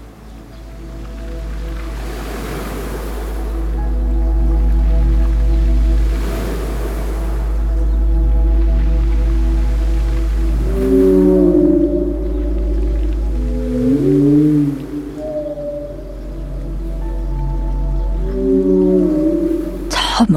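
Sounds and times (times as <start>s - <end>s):
whale song through the water: 0.0s - 20.2s
deep steady rumble: 0.0s - 20.3s.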